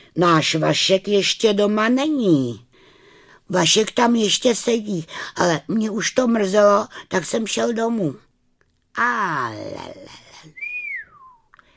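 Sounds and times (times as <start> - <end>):
speech: 0.2 - 2.7, 3.5 - 8.3, 9.0 - 10.6
man whistling: 10.5 - 11.6.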